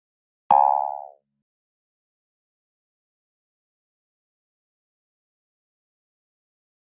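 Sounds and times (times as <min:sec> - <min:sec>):
digital spring quack: 0:00.5 - 0:01.2.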